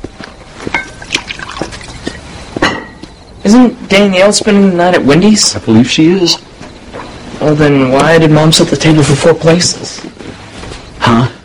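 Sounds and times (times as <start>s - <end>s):
small clinks of a glass: 0.7s - 1.9s, 2.6s - 3.1s
wine poured into a glass: 1.0s - 2.1s
speech: 3.5s - 6.5s, 7.4s - 10.1s, 11.0s - 11.4s.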